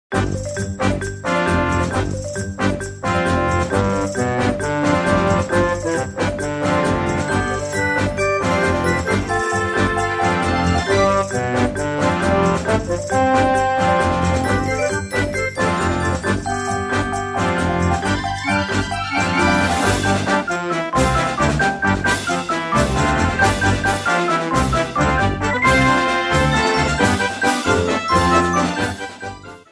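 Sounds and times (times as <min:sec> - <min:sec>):
theme music: 0:00.1 - 0:29.7.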